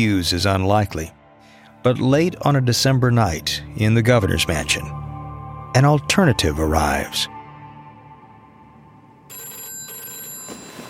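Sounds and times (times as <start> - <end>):
speech: 0.0 - 1.2, 1.8 - 5.0, 5.8 - 7.4
telephone bell ringing: 9.3 - 10.8.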